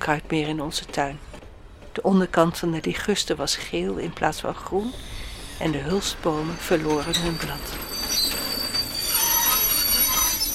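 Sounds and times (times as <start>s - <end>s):
speech: 0.0s - 1.3s, 2.0s - 7.9s
rumbling rush of rail noise: 0.0s - 10.5s
train braking with high-pitched wheel squeal: 4.9s - 10.5s.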